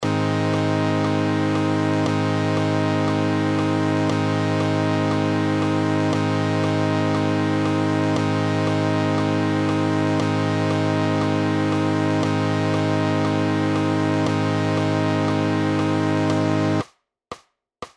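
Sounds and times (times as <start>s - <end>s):
A major scale guitar backing track: 0.0s - 16.8s.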